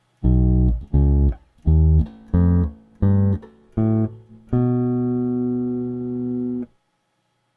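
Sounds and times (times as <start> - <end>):
distorted bass guitar playing a whole tone scale: 0.2 - 6.7.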